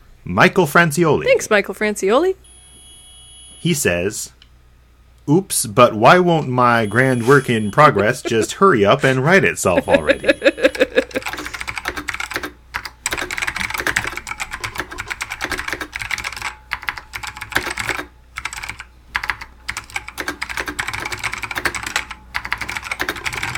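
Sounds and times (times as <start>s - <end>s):
speech: 0.2s - 2.5s, 3.6s - 4.4s, 5.3s - 10.3s
laughter: 7.0s - 11.6s
typing on a computer keyboard: 11.1s - 23.5s.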